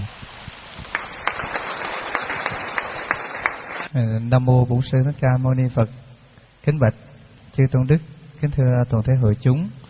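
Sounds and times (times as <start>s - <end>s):
audience clapping to welcome a Buddhist monk: 0.8s - 3.9s
speech: 4.0s - 6.0s, 6.6s - 9.8s.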